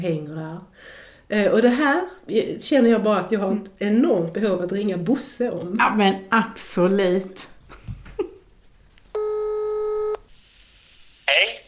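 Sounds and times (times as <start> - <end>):
speech: 0.0 - 7.5
telephone ringing tone: 9.2 - 10.3.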